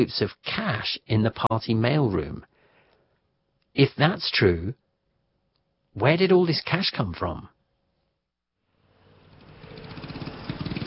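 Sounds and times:
speech: 0.0s - 2.5s, 3.8s - 4.8s, 6.0s - 7.5s
scooter engine revving in morning city traffic in Paris: 9.1s - 10.8s.

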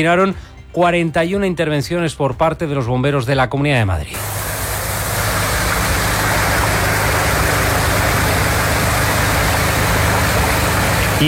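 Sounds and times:
speech: 0.0s - 4.4s
water pumps draining floodwater from garages in Madrid after heavy rain: 4.2s - 11.2s.

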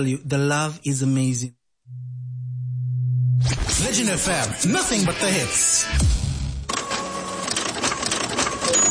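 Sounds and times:
speech: 0.0s - 2.0s, 3.4s - 6.3s
office printer running: 6.7s - 8.9s.

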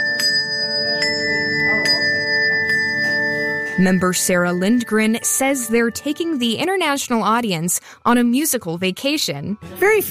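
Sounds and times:
bell ensemble playing a melodic tune: 0.0s - 6.7s
speech: 3.8s - 10.1s.

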